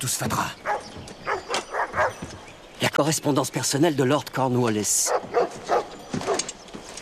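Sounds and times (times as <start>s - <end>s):
speech: 0.0s - 0.7s, 3.0s - 5.4s
several dogs barking: 0.6s - 2.4s, 5.0s - 6.6s.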